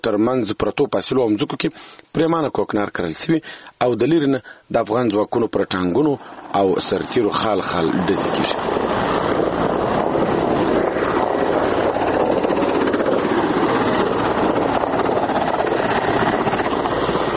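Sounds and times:
speech: 0:00.0 - 0:09.2
gusty wind buffeting: 0:05.9 - 0:17.3
military helicopters circling overhead: 0:06.1 - 0:17.3.

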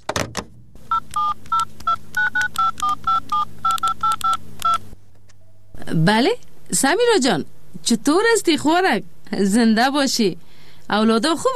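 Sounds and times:
low hum: 0:00.3 - 0:03.7, 0:04.3 - 0:08.8
dual-pitched telephone keypad dialing beeps: 0:00.9 - 0:05.8
speech: 0:06.0 - 0:11.5.

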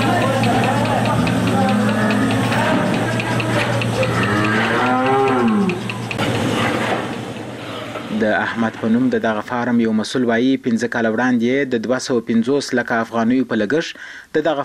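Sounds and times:
steady mechanical hum of milking machines: 0:00.0 - 0:10.7
cows lowing on a dairy farm: 0:00.2 - 0:06.1
speech: 0:08.5 - 0:14.6.

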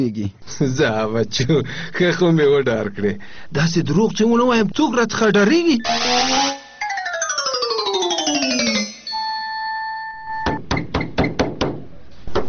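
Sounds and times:
speech: 0:00.0 - 0:06.5
sliding electronic tones: 0:05.8 - 0:09.5
steady chime-like notes: 0:05.8 - 0:10.4
knocking on a door: 0:10.6 - 0:11.8.

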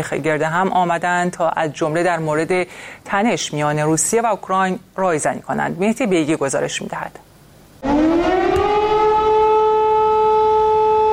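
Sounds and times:
speech: 0:00.0 - 0:07.3
loud air raid warning siren: 0:07.8 - 0:11.1.

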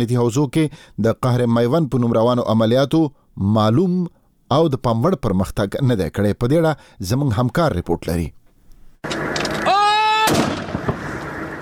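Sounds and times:
speech: 0:00.0 - 0:08.4
sharp blast: 0:10.2 - 0:11.3
artillery cannon fire during fighting: 0:10.2 - 0:11.5
loud boom of artillery cannon fire: 0:10.2 - 0:11.5.

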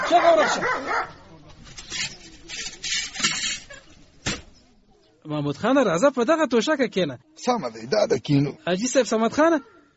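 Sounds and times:
dog barking: 0:00.0 - 0:01.3
speech: 0:00.1 - 0:01.2, 0:05.3 - 0:09.9.

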